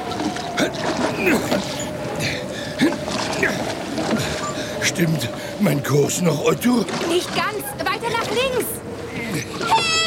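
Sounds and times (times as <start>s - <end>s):
oars rowing a boat through water: 0.0s - 10.0s
speech: 5.0s - 8.8s.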